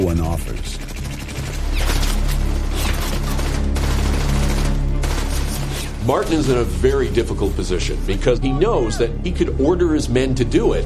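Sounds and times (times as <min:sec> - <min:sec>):
speech: 0:00.0 - 0:00.8, 0:06.0 - 0:10.8
machine gun fire from an enemy gun nest: 0:00.8 - 0:06.6.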